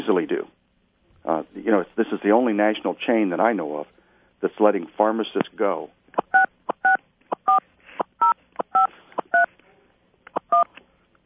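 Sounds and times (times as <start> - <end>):
speech: 0.1 - 0.6, 1.2 - 6.0
telephone keypad dialing tones: 6.2 - 7.6, 8.2 - 9.5, 10.4 - 10.7.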